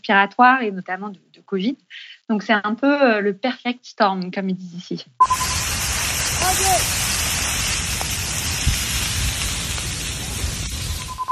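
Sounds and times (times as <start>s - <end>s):
speech: 0.0s - 5.4s
faint whistle-like chirp: 5.2s - 5.8s, 11.0s - 11.3s
wildfire flames crackling and hissing: 5.2s - 11.3s.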